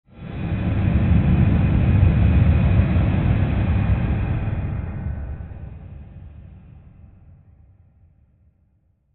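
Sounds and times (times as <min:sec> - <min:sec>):
long airy rushing rumble swell: 0:00.1 - 0:07.4.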